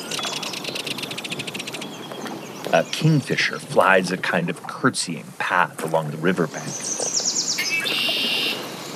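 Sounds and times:
bird holding a bright buzzy trill: 0.0 - 2.7, 6.8 - 8.9
birds chirping in a wetland refuge: 0.0 - 8.9
faint hiss: 0.0 - 8.9
speech: 2.7 - 7.1.

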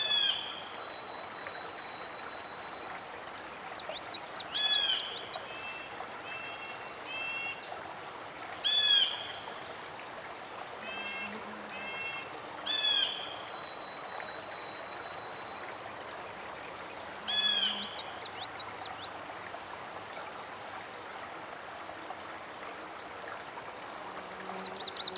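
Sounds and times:
running water: 0.0 - 25.1
other birds: 3.4 - 5.4, 17.2 - 19.1, 24.5 - 25.1
chestnut-sided warbler singing short bright accented phrases: 3.6 - 5.4, 17.4 - 19.1, 24.5 - 25.1.

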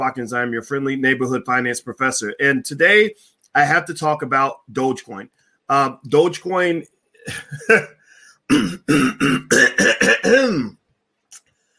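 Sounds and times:
speech: 0.0 - 10.8
man clearing throat: 7.2 - 7.9, 8.5 - 10.8.

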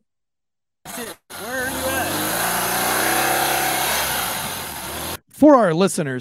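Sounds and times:
police motorcycle engine revving: 0.9 - 5.2
road noise at a busy intersection: 0.9 - 5.2
speech: 1.0 - 1.6, 5.4 - 6.2.

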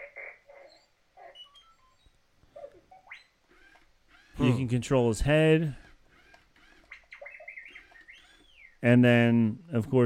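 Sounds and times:
toy robot droid chirping and beeping: 0.6 - 4.6, 6.2 - 8.8
speech: 4.4 - 5.8, 8.8 - 10.0.

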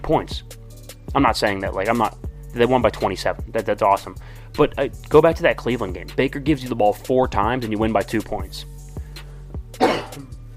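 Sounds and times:
speech: 0.1 - 8.7, 10.2 - 10.4
person clearing throat: 9.8 - 10.4
person coughing: 9.8 - 10.4.

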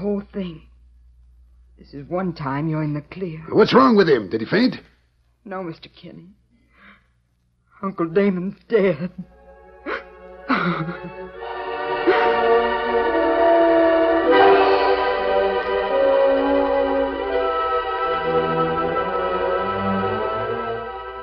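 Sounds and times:
speech: 0.0 - 0.7, 1.8 - 6.4, 7.8 - 9.4, 10.6 - 13.1
train rumbling past: 10.5 - 21.2.

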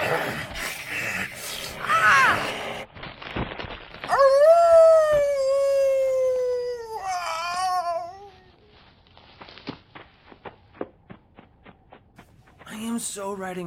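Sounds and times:
werewolf howling during a fight with a vampire: 4.1 - 8.6
footsteps and taps: 9.4 - 12.8
speech: 13.2 - 13.6.

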